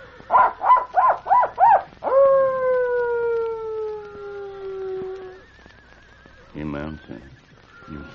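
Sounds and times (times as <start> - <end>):
person imitating coyote yips and howl as a signal: 0.3 - 5.5
speech: 7.0 - 8.1.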